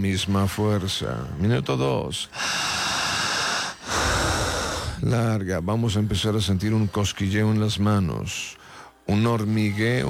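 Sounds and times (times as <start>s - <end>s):
speech: 0.0s - 2.9s, 5.0s - 10.0s
heavy continuous breathing: 2.3s - 5.2s, 8.6s - 9.0s.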